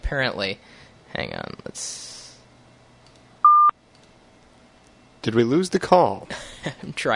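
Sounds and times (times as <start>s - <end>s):
speech: 0.1s - 2.2s, 5.2s - 7.1s
phone keypad tone during a call: 3.4s - 3.7s.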